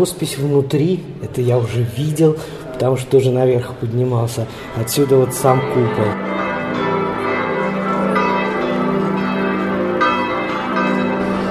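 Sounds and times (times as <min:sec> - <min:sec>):
speech: 0:00.0 - 0:06.4
church bells ringing from Gothic bell tower in Florence: 0:02.4 - 0:11.4.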